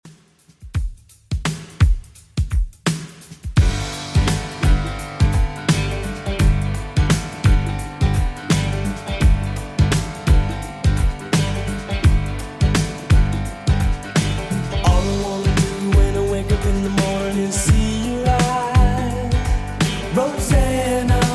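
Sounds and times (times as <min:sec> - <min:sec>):
80s music loop at 85 bpm: 0:00.0 - 0:21.3.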